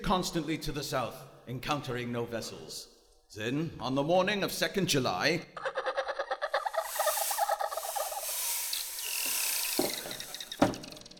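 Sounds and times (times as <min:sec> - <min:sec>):
speech: 0:00.1 - 0:05.7
dolphins clicking and chattering beside a vessel at sea: 0:06.4 - 0:11.1.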